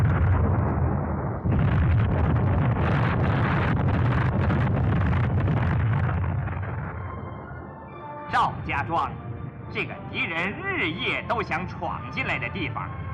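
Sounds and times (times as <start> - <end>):
landmine explosions: 0.0 - 7.1
speech: 8.8 - 13.0.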